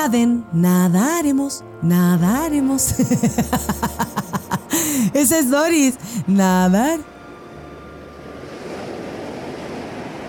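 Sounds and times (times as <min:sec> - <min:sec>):
speech: 0:00.0 - 0:07.1
laughter: 0:02.9 - 0:05.0
strong gust of wind: 0:08.2 - 0:10.2.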